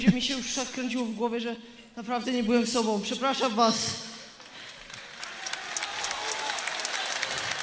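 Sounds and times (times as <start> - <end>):
speech: 0.0 - 4.1
audience applause: 4.7 - 7.6.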